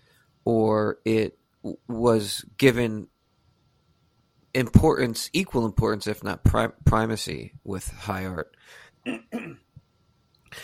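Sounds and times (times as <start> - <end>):
speech: 0.9 - 3.1, 4.5 - 9.6
soft throat sound: 9.1 - 9.6
person coughing: 9.1 - 9.7.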